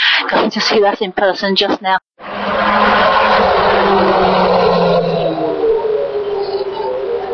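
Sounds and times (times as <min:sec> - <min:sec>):
speech: 0:00.3 - 0:03.0
classic Formula One racing car driving past: 0:02.2 - 0:07.3.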